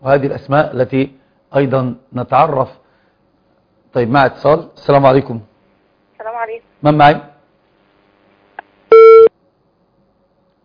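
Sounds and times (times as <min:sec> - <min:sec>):
speech: 0:00.0 - 0:02.8, 0:03.9 - 0:05.5, 0:06.4 - 0:07.3
telephone busy tone after a disconnected call: 0:08.9 - 0:09.3.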